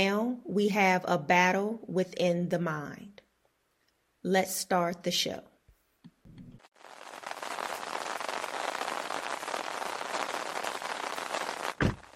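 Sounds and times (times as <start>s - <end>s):
speech: 0.0s - 3.1s, 4.2s - 5.5s
heavy rain falling outdoors: 6.7s - 12.1s
low thump: 11.8s - 12.0s.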